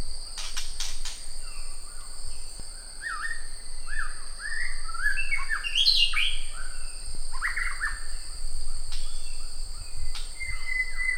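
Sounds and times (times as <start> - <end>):
high insect drone: 0.0 - 11.1
white-rumped shama whistled song: 3.0 - 8.1, 8.9 - 11.1.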